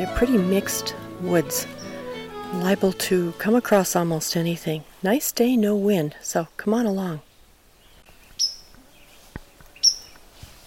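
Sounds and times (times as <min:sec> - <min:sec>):
speech: 0:00.0 - 0:01.8, 0:02.5 - 0:07.3
white-throated sparrow whistled song notes in mixed woods: 0:00.9 - 0:03.0
soft thuds like footsteps: 0:08.8 - 0:10.6.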